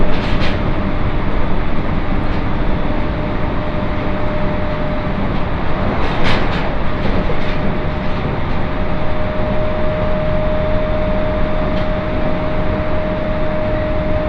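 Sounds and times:
rumble of wheels inside a train on a main line: 0.0 - 14.2
brief rattles and knocks: 5.3 - 8.8.

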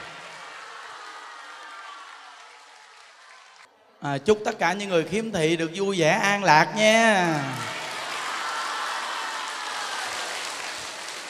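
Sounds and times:
large audience at a Buddhist gathering applauding: 0.0 - 3.7, 7.0 - 11.2
speech: 4.0 - 7.7.

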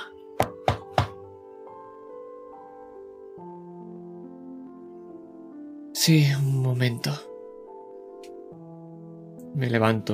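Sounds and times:
firm knocking on a door: 0.4 - 1.3
speech: 6.0 - 7.3, 9.6 - 10.1.

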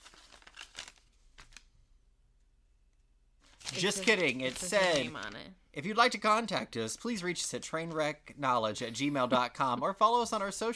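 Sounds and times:
paper crumpling: 0.0 - 1.7, 3.4 - 5.5
speech: 3.7 - 10.7.

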